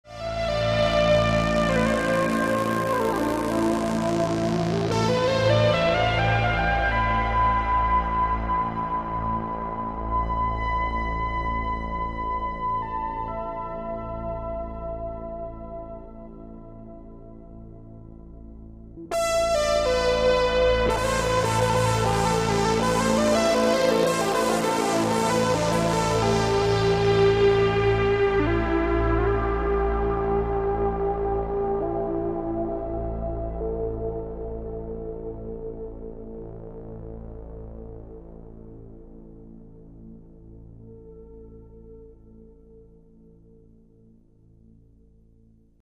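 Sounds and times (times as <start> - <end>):
synthesizer: 0.0 - 45.8.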